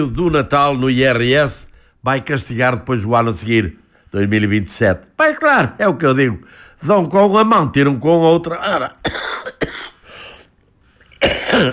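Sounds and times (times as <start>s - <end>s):
speech: 0.0s - 9.9s, 11.2s - 11.7s
man clearing his throat: 9.0s - 10.0s, 11.2s - 11.7s
man coughing: 9.0s - 10.0s, 11.2s - 11.7s.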